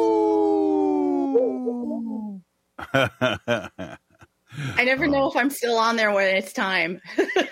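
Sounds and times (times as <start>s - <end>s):
person imitating a weak wolf howl: 0.0s - 2.4s
speech: 2.8s - 3.8s, 4.6s - 7.5s
laughter: 2.8s - 5.2s.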